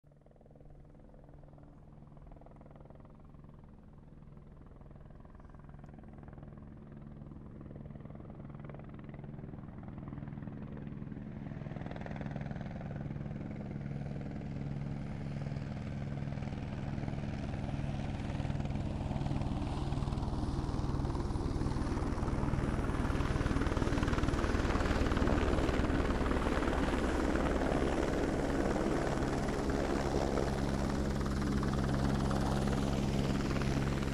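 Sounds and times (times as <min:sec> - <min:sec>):
helicopter approaching, landing and leaving: 0:00.0 - 0:34.1.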